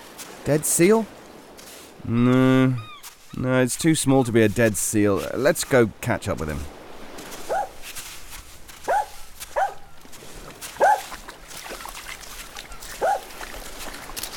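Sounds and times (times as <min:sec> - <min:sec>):
speech: 0:00.4 - 0:01.2, 0:02.0 - 0:06.8
dog barking at something in water: 0:07.5 - 0:07.8, 0:08.8 - 0:09.9, 0:10.8 - 0:11.1, 0:13.0 - 0:13.3.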